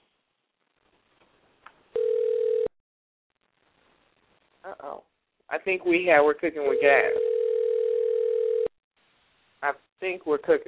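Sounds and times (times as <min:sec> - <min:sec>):
telephone dial tone from an accidental call: 0:02.0 - 0:02.7, 0:06.8 - 0:08.7
speech: 0:04.7 - 0:07.3, 0:09.6 - 0:10.6.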